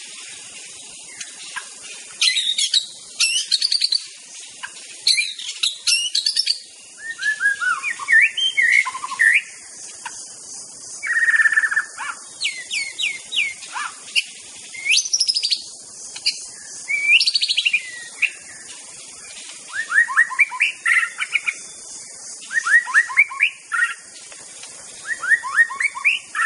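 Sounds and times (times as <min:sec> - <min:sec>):
steady high hiss of insects in forest: 0:00.0 - 0:26.4
wild white-rumped shama singing in forest: 0:02.2 - 0:04.0, 0:05.0 - 0:09.6, 0:11.0 - 0:18.6, 0:19.7 - 0:21.8, 0:22.4 - 0:24.0, 0:25.0 - 0:26.4.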